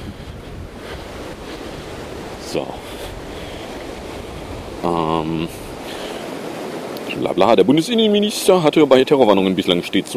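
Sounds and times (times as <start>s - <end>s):
strong wind buffeting the microphone outdoors: 0.0s - 7.7s
speech: 2.5s - 3.1s, 4.8s - 5.6s, 7.1s - 10.1s.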